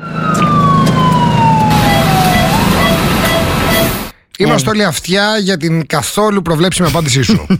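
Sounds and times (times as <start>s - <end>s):
ambulance siren wailing: 0.0s - 4.1s
steady traffic noise: 0.0s - 4.6s
rumbling engine: 0.0s - 4.7s
speech: 4.4s - 7.5s.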